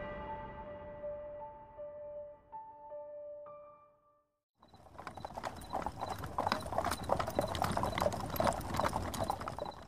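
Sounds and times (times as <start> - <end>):
horse hooves clip-clopping as a horse-drawn carriage arrives: 4.6 - 9.8.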